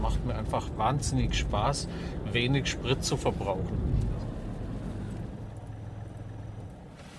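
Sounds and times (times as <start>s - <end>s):
car engine idling at a traffic light: 0.0s - 7.1s
road or cabin rumble: 0.0s - 7.1s
speech: 0.1s - 4.2s.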